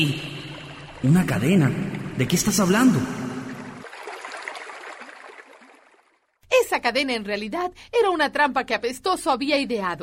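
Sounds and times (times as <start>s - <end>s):
speech: 0.0s - 0.3s, 1.0s - 3.2s, 6.8s - 10.0s
water flooding into a cave: 0.0s - 6.1s.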